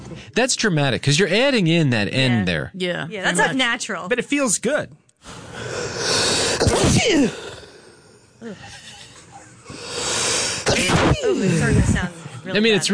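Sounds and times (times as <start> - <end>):
quieter noisy background: 0.0 - 12.9
speech: 0.1 - 7.5, 8.4 - 8.8, 10.8 - 12.9
human sneezes played back from a camera recording: 6.0 - 8.9, 9.7 - 11.8.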